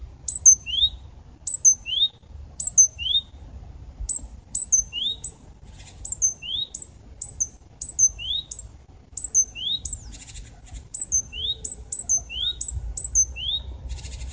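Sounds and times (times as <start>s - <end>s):
faint low background hum: 0.0s - 14.3s
great tit Parus major calling: 0.2s - 3.4s, 4.1s - 14.3s.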